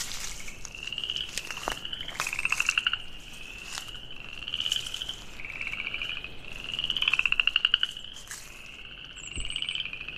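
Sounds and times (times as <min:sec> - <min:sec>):
frogs trilling near a wetland forest in a river bend: 0:00.0 - 0:10.1.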